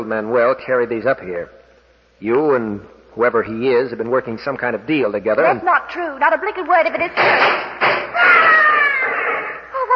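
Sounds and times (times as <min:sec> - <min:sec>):
speech: 0:00.1 - 0:01.6, 0:02.2 - 0:07.7
person screaming high-pitched: 0:08.1 - 0:09.9.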